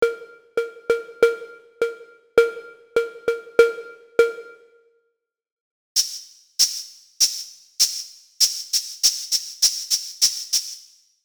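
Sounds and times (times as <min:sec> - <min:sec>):
cowbell: 0:00.0 - 0:04.7.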